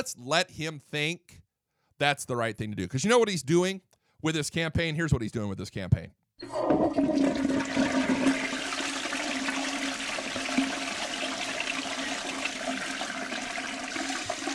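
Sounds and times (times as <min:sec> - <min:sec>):
speech: 0:00.0 - 0:01.4, 0:02.0 - 0:08.4
toilet flushing: 0:06.4 - 0:14.5.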